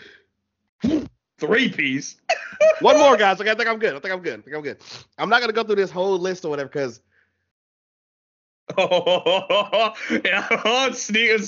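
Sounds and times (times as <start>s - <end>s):
person sneezing: 0.8s - 1.1s
speech: 1.4s - 7.1s, 8.7s - 11.4s
laughter: 2.3s - 3.2s, 8.7s - 11.4s.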